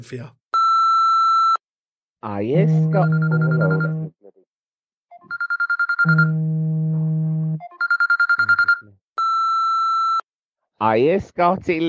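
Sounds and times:
speech: 0.0 - 0.4, 2.2 - 4.2, 5.2 - 6.7, 10.8 - 11.8
phone alarm beeping: 0.6 - 1.6, 2.9 - 4.1, 5.1 - 6.4, 7.6 - 10.2.

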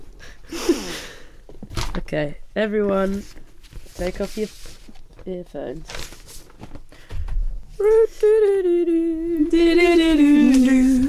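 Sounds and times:
person blowing nose: 0.5 - 1.2
speech: 2.1 - 3.4, 4.0 - 6.0, 7.8 - 11.0.

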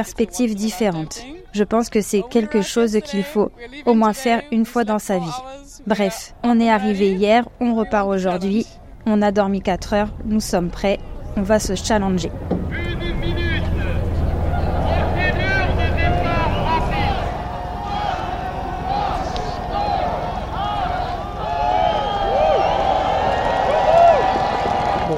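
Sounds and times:
speech: 0.0 - 12.8
rumble of many boats setting off on a river at a race start: 6.0 - 25.1
crowd of voices calling and chattering: 13.6 - 23.2.

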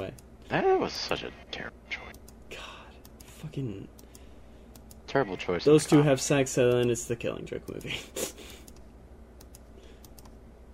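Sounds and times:
speech: 0.1 - 1.9, 3.4 - 4.0, 5.1 - 8.3
soft keyboard and mouse clicks: 3.0 - 5.0, 6.6 - 7.0, 8.5 - 10.4.

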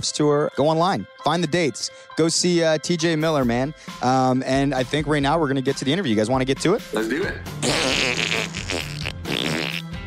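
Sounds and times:
speech: 0.0 - 8.2
loud raspy buzzing fart noise: 7.6 - 10.0.

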